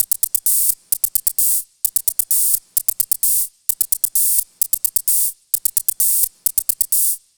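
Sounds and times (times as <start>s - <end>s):
electronic hi-hat drum loop: 0.0s - 7.3s.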